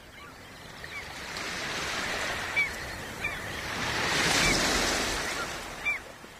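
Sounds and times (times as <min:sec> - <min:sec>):
faint short bird calls: 0:00.0 - 0:06.2
ocean waves washing onto a shore: 0:00.0 - 0:06.3.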